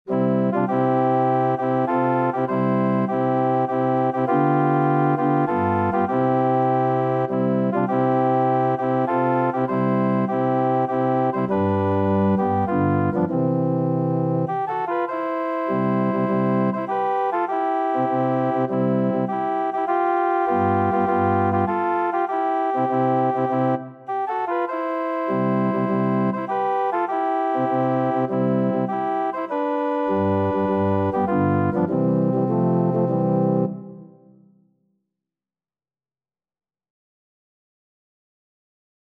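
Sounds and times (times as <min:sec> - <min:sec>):
organ playing: 0:00.1 - 0:34.2.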